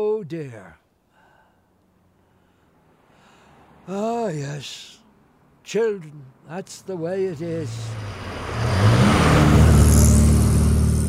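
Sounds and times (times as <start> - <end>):
speech: 0.0 - 0.8, 3.9 - 5.0, 5.7 - 8.2
car engine roaring past at a busy road crossing: 7.6 - 11.0.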